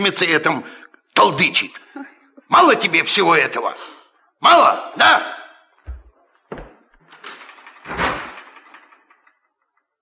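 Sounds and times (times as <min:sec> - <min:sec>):
speech: 0:00.0 - 0:05.4
door rattling: 0:05.8 - 0:09.9
door slamming shut: 0:05.9 - 0:09.4.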